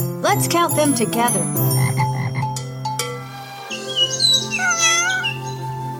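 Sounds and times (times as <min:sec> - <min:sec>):
speech: 0:00.3 - 0:01.8
low buzzing frog croak: 0:01.6 - 0:02.8, 0:03.7 - 0:05.7
cat meowing in a drawn-out wavering cry: 0:03.9 - 0:05.6.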